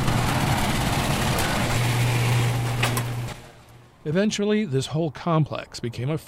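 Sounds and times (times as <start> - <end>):
giant old motorized garage door grinding open: 0.0 - 3.9
speech: 4.0 - 6.2.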